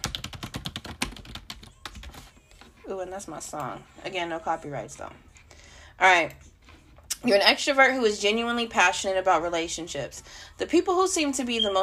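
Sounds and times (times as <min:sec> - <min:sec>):
typing on a computer keyboard: 0:00.0 - 0:02.3
speech: 0:02.9 - 0:05.3, 0:06.0 - 0:06.5, 0:07.2 - 0:11.8.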